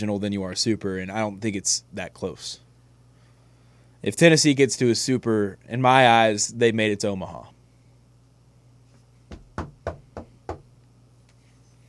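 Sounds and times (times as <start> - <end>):
speech: 0.0 - 2.6, 4.0 - 7.6
low steady hum: 0.0 - 11.8
knocking on wood: 9.3 - 10.7.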